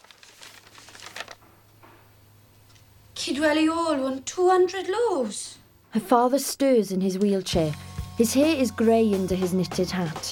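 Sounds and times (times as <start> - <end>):
brown paper envelopes being opened in a bakery: 0.0 - 1.7
speech: 3.3 - 10.2.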